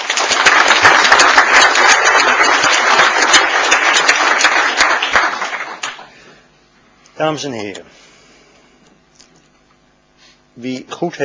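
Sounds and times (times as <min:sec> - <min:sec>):
large audience applause: 0:00.0 - 0:06.2
speech: 0:07.2 - 0:08.0, 0:10.6 - 0:11.2.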